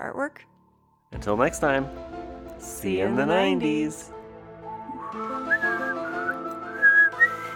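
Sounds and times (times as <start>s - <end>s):
speech: 0.0s - 4.2s
person whistling a theme-tune melody: 4.8s - 7.5s.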